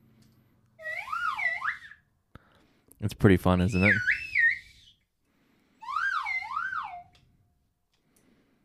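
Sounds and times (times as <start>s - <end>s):
slide whistle swooping in wavy glissandos: 0.8s - 2.1s, 3.7s - 5.1s, 5.8s - 7.3s
speech: 3.0s - 4.1s.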